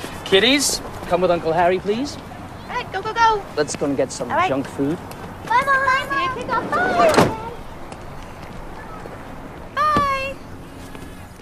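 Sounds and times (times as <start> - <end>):
faint hum of an outdoor background: 0.0 - 11.4
speech: 0.3 - 2.3, 2.9 - 7.4
car door slamming shut: 7.0 - 7.5.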